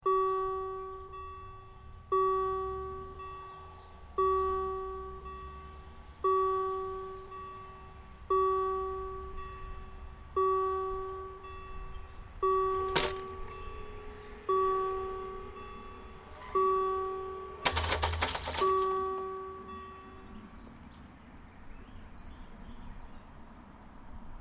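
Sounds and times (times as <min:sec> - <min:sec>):
level crossing acoustic warning signal: 0:00.0 - 0:20.9
level crossing barriers rising and lowering: 0:12.4 - 0:20.3.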